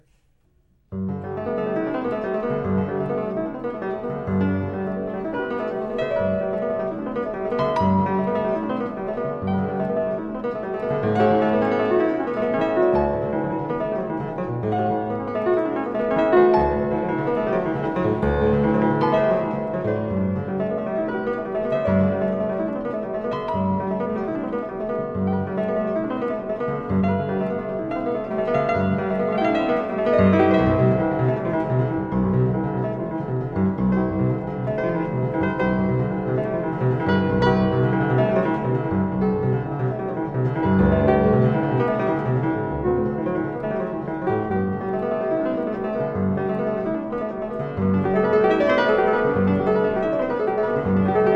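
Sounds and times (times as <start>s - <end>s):
piano prelude in G major: 0.0s - 51.3s.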